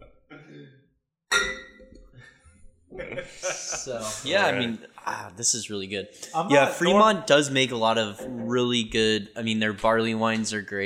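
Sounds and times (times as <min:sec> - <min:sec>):
glasses clinking in a toast: 0:01.3 - 0:02.0
laughter: 0:02.9 - 0:05.2
speech: 0:03.2 - 0:10.8.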